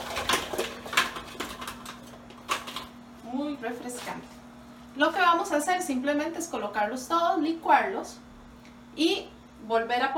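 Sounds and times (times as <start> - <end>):
frozen coconut or almond milk cubes dropping into a food processor bowl: 0.0 - 2.9
speech: 3.6 - 4.4, 5.0 - 8.2, 9.0 - 10.1.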